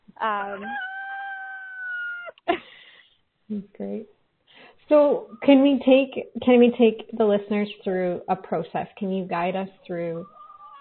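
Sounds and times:
speech: 0:00.2 - 0:00.9, 0:03.5 - 0:10.4
rooster crowing: 0:00.6 - 0:02.3.

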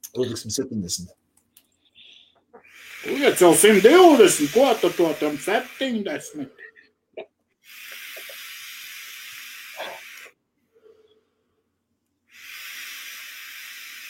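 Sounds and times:
speech: 0:00.0 - 0:01.2, 0:02.8 - 0:07.3
vapor exhaled from a vape during chain vaping: 0:02.0 - 0:06.5, 0:07.6 - 0:10.4, 0:12.3 - 0:14.0.

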